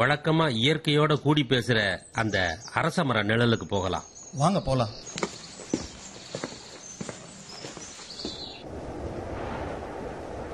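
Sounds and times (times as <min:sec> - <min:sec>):
speech: 0:00.0 - 0:05.3
footsteps crunching on a lakeshore: 0:05.0 - 0:08.6
gentle breeze blowing across the microphone: 0:08.1 - 0:10.5.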